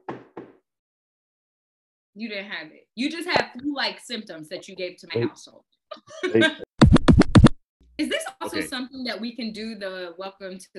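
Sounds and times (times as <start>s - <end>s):
knuckles knocking on wood: 0.0s - 0.6s
speech: 2.2s - 6.7s, 8.0s - 10.7s
laughter: 5.9s - 6.6s, 8.2s - 8.7s.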